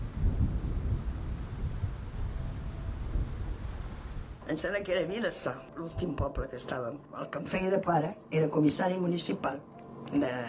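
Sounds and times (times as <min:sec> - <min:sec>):
deep rolling thunder: 0:00.0 - 0:04.4
heavy torrential winter downpour: 0:00.0 - 0:04.4
speech: 0:04.5 - 0:10.4.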